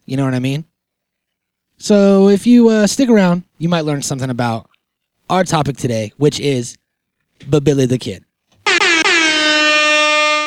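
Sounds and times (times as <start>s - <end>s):
speech: 0.1s - 0.7s, 1.8s - 4.7s, 5.3s - 6.8s, 7.4s - 8.3s
air horn blast: 8.6s - 10.4s.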